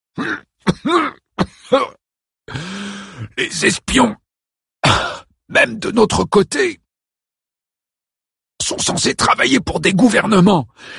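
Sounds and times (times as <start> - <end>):
harsh hacking coughing fit: 0.1 - 2.0, 4.8 - 5.3
speech: 0.2 - 1.0, 3.4 - 4.2, 4.9 - 6.8, 8.7 - 10.9
throaty groaning breaths: 2.5 - 3.4.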